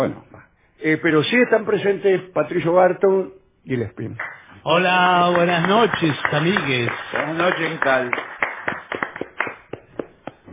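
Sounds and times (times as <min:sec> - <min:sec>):
speech: 0:00.0 - 0:08.3
few people clapping in a radio studio: 0:04.2 - 0:10.5.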